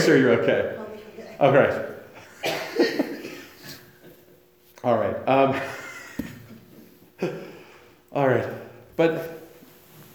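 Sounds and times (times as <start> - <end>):
speech: 0.0 - 1.9, 4.8 - 6.3, 7.2 - 7.5, 8.1 - 9.4
audience member coughing during a sermon: 2.4 - 3.8.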